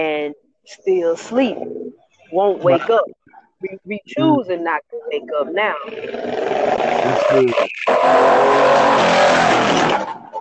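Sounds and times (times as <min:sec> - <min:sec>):
speech: 0:00.0 - 0:10.1
person speaking faintly: 0:02.6 - 0:03.0, 0:04.1 - 0:05.4, 0:07.0 - 0:07.6
road traffic roar with engines rumbling: 0:06.0 - 0:10.3.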